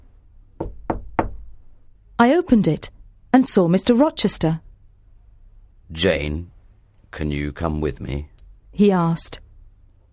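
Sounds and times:
faint hum: 0.0 - 10.1
firm knocking on a door: 0.6 - 1.6
speech: 2.2 - 4.7, 5.9 - 6.5, 7.1 - 9.4.

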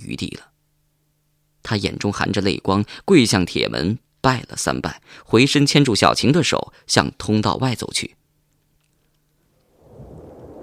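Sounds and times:
speech: 0.0 - 0.5, 1.7 - 8.2
gale winds in an island thunderstorm: 9.6 - 10.6
low rolling thunder rumble in an island thunderstorm: 9.7 - 10.6
heavy rain in an island thunderstorm: 9.8 - 10.6.

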